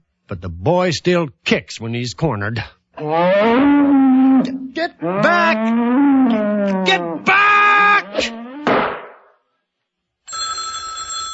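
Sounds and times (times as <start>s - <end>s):
speech: 0.3s - 7.4s
telephone bell ringing: 10.3s - 11.3s.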